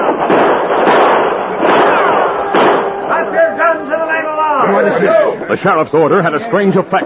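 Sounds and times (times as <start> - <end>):
gunfire in a shootout on a ship's gangplank: 0.0 - 3.8
speech: 4.8 - 7.0.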